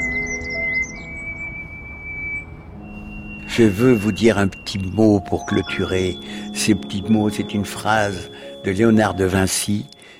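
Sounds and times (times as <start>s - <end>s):
many birds singing, including small treecreepers: 0.0s - 10.1s
speech: 3.6s - 10.0s.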